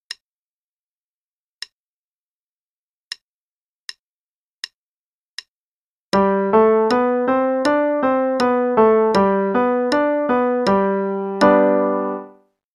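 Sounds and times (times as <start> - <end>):
G major five-finger pattern: 6.2 - 12.4.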